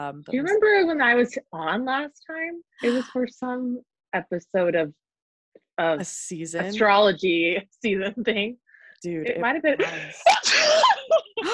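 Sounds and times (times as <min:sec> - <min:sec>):
speech: 0:00.0 - 0:05.0, 0:05.8 - 0:11.5
brief breathy vocal sounds: 0:02.8 - 0:03.2, 0:09.8 - 0:10.6
person sneezing: 0:09.8 - 0:11.0.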